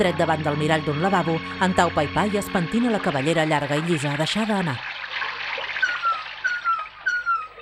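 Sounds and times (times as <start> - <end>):
speech: 0.0 - 4.9
bathtub filling from a lion-head tap in a yellow-tiled bathroom: 1.0 - 7.6.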